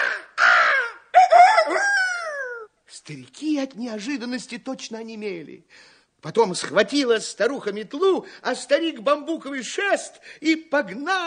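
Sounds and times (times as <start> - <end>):
crow cawing: 0.0 - 1.8
speech: 3.1 - 11.2.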